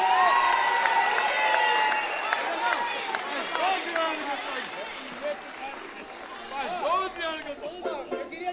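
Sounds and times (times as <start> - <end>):
lively audience cheering and whooping: 0.0 - 5.2
audience clapping: 0.0 - 7.7.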